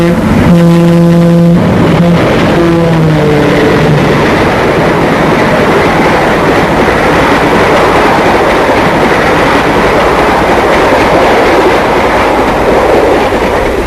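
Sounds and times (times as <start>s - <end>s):
streamlined passenger train horn blast: 0.0s - 4.1s
streamlined passenger train passing on rails: 0.0s - 13.8s.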